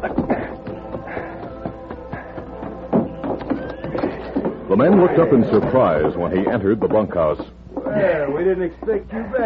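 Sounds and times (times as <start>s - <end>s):
dense noise: 0.0s - 9.4s
horse hooves clip-clopping as a man rides toward a ranch at night: 0.0s - 9.4s
horse whinnying: 3.4s - 5.3s
speech: 4.7s - 9.4s.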